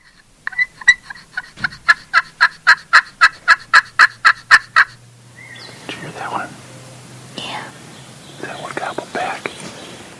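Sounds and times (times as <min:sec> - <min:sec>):
hunter's turkey call device gobbling rattle: 0:00.0 - 0:05.7
soft whispered talk: 0:05.9 - 0:06.6, 0:08.4 - 0:09.6.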